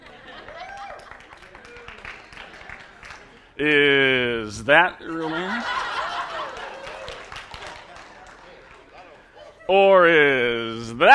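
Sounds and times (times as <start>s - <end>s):
laughter: 0.0s - 1.6s, 5.0s - 10.7s
crowd applauding: 0.0s - 3.6s, 5.8s - 9.1s
speech: 3.6s - 5.6s, 9.7s - 11.1s.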